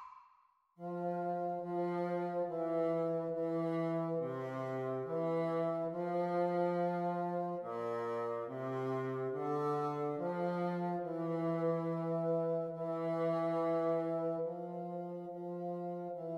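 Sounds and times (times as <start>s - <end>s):
bassoon duet speed practice: 0.8s - 16.3s.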